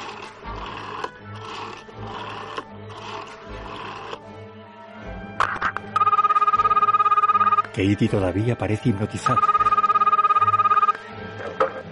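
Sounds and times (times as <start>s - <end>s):
telephone ringing through the line: 5.8s - 7.8s, 9.2s - 11.1s
speech: 7.8s - 9.6s.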